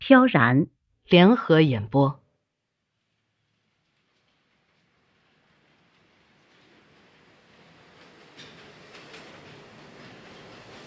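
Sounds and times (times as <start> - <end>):
speech: 0.1 - 2.2
subway train carriage rumbling along: 3.6 - 10.8
faint rhythmic rail clacks: 3.9 - 10.8.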